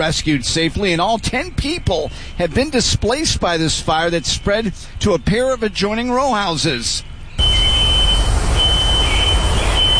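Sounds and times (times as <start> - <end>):
speech: 0.0 - 7.5
loud rumbling noise: 0.0 - 9.9
nearby smoke detector going off after a house fire: 7.4 - 9.9.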